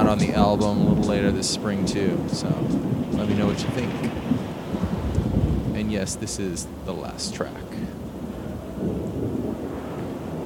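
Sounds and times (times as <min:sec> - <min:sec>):
low continuous rumble: 0:00.0 - 0:10.4
steady rain falling outdoors in the mountains of Hawaii: 0:00.0 - 0:10.4
speech: 0:00.1 - 0:04.5, 0:05.9 - 0:08.0, 0:08.8 - 0:09.3.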